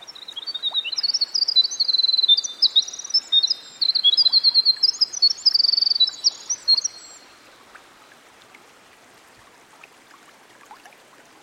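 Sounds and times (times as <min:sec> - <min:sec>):
Winter wren singing by a stream: 0:00.0 - 0:07.5.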